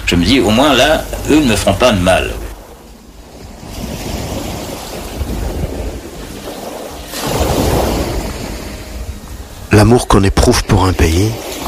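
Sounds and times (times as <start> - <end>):
sea waves washing onto the shore: 0.0 - 11.6
speech: 0.1 - 2.4, 9.7 - 11.6
wind noise: 2.5 - 9.7.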